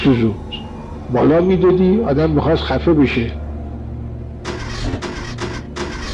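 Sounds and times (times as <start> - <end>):
speech: 0.0 - 0.5, 1.1 - 3.4
car engine cranking, failing to start: 4.4 - 6.1.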